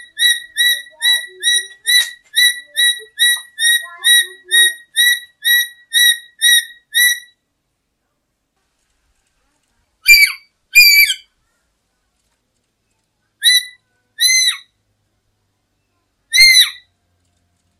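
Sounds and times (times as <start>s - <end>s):
black-capped lory giving harsh whistled calls: 0.0s - 7.4s, 10.1s - 11.3s, 13.4s - 14.7s, 16.3s - 16.9s.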